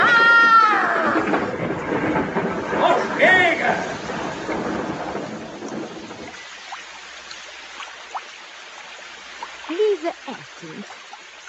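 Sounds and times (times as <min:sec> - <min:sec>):
deep rolling rumble of thunder: 0:00.0 - 0:06.7
steady rain pouring down: 0:00.0 - 0:11.4.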